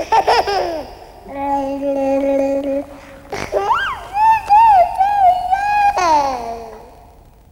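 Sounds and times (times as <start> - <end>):
babies' voices babbling in an old German schlager song recording: 0.0 - 7.1
old German schlager song recording: 1.3 - 7.1.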